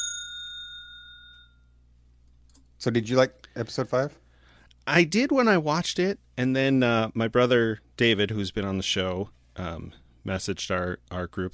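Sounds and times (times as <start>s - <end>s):
single bell struck with a bright clear tone: 0.0s - 1.7s
speech: 2.8s - 4.2s, 4.8s - 11.5s.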